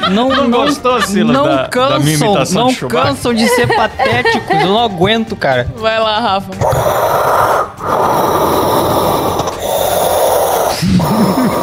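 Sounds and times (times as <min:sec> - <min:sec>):
laughter: 0:00.0 - 0:05.2
speech: 0:00.1 - 0:08.5
voice imitating mechanical respirator breathing: 0:06.6 - 0:11.6.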